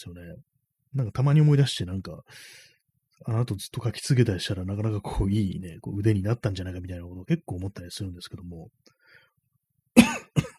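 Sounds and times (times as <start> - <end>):
speech: 0.0 - 9.0
harsh coughs: 10.0 - 10.5.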